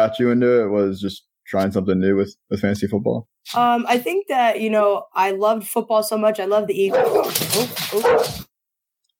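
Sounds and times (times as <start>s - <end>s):
speech: 0.0s - 8.5s
dog barking: 6.9s - 8.5s.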